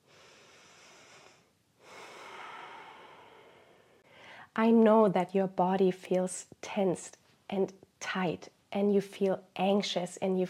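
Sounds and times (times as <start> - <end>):
deep human breath: 0.0 - 4.5
speech: 4.6 - 10.4.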